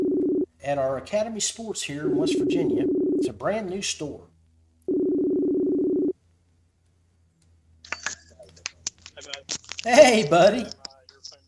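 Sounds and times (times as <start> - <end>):
outgoing phone call ringing tone: 0.0 - 0.5, 2.1 - 3.3, 4.9 - 6.1
speech: 0.6 - 4.3, 9.8 - 10.8.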